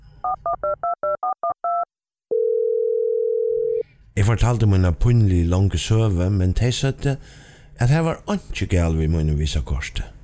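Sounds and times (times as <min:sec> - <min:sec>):
continuous telephone dial tone: 0:00.6 - 0:03.8
speech: 0:04.2 - 0:10.2.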